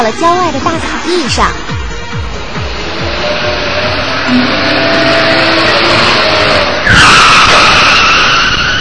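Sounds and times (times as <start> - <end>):
speech: 0.0 - 1.7
motorcycle engine roaring: 1.6 - 8.7
motorcycle tires skidding with a gritty squeal: 3.2 - 8.7.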